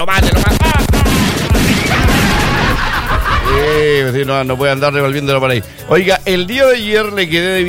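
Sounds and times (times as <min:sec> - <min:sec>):
speech: 0:00.0 - 0:00.6, 0:04.1 - 0:07.6
rapid volley of gunshot sound effects: 0:00.0 - 0:03.5
laughter: 0:01.7 - 0:04.6.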